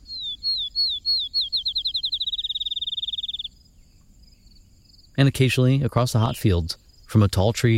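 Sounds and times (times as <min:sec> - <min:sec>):
sparrow singing whistled notes and a rapid bouncing trill: 0:00.0 - 0:07.7
speech: 0:05.2 - 0:07.7.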